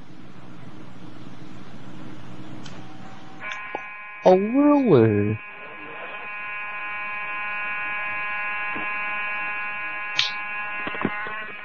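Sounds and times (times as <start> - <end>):
fire alarm buzzing: 2.8 - 11.6
speech: 4.3 - 5.5.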